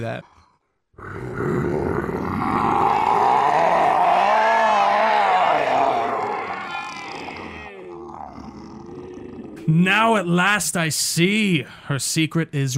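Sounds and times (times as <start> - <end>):
speech: 0.0 - 0.4, 1.0 - 1.9, 9.7 - 12.7
person imitating a monster's roar with a gravelly growl: 1.0 - 9.7.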